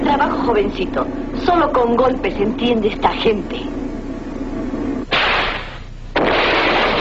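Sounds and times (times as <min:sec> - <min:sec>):
speech: 0:00.2 - 0:03.8
gunfire blasts in an action scene: 0:05.1 - 0:06.9.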